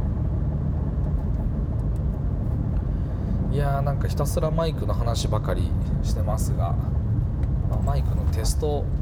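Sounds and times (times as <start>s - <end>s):
road rumble and engine-and-tire drone inside a moving car with windows shut: 0.0s - 9.0s
speech: 3.6s - 7.0s, 7.7s - 9.0s.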